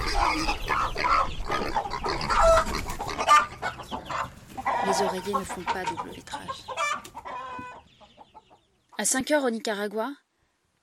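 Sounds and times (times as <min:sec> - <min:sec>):
rough pig-like grunting calls in a farmyard in Nicaragua: 0:00.0 - 0:06.0
fowl clucking in a farmyard in Nicaragua at daybreak: 0:00.0 - 0:08.6
speech: 0:05.0 - 0:07.1, 0:09.0 - 0:10.2.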